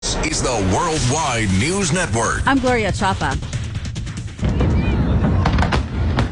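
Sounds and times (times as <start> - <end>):
speech: 0.2 - 3.6
fireworks for 4th of July celebrations in the United States bursting: 2.7 - 6.3
faint crowd voices: 4.4 - 5.9.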